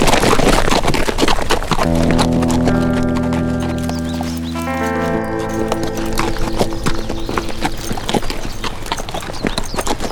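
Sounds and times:
galloping horses with riders riding away: 0.0s - 4.5s, 6.8s - 10.0s
sustained tonal notes: 1.8s - 9.4s.

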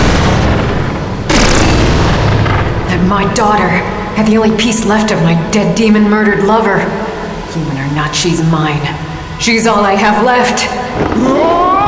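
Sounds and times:
gunshot fired at a target: 0.0s - 2.9s
steady low rumble: 0.0s - 11.4s
speech: 3.1s - 7.0s, 7.6s - 11.7s.

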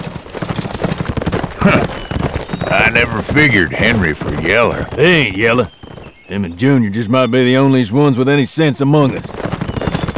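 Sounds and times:
horses setting off at a ride, hooves clip-clopping: 0.0s - 6.6s, 9.0s - 10.1s
speech: 1.6s - 2.0s, 2.9s - 9.4s.

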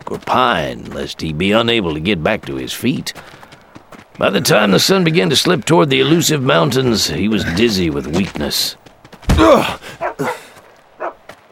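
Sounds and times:
speech: 0.1s - 3.4s, 4.2s - 8.8s, 9.4s - 10.4s
dog barking: 10.0s - 11.5s.

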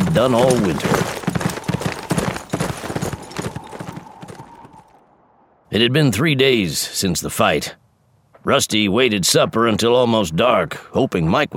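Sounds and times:
horse hooves as a rider rides away: 0.0s - 4.9s
speech: 0.2s - 1.2s, 5.7s - 7.8s, 8.4s - 11.5s.

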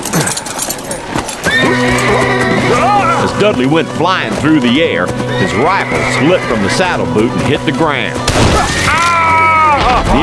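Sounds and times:
horse hooves clip-clopping: 0.0s - 10.1s
big gray horse on a ranch whinnying: 0.1s - 3.4s, 5.1s - 6.8s, 8.6s - 9.9s
speech: 0.2s - 0.5s, 3.4s - 8.9s, 9.9s - 10.2s.

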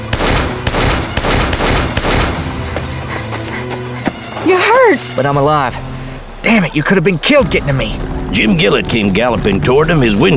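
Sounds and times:
rapid gunshots in a gunfight beside a livery barn: 0.0s - 3.6s
speech: 4.4s - 10.3s.

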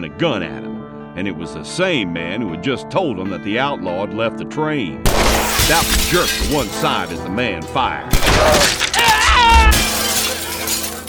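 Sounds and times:
speech: 0.0s - 8.9s
ringing fragments of glass: 5.1s - 11.0s
train window glass shattering as a man crashes through: 5.1s - 11.0s.

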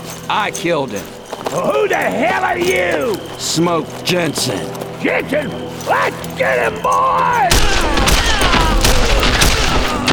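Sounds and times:
speech: 0.3s - 7.8s
Winchester rifle gunfire in a Western shootout: 7.5s - 10.1s.

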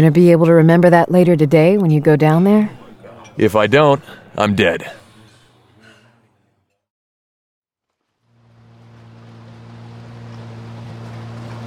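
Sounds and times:
speech: 0.0s - 2.8s, 3.4s - 5.0s
motorboat engine droning: 8.1s - 11.6s
water wash and spray: 8.4s - 11.6s.

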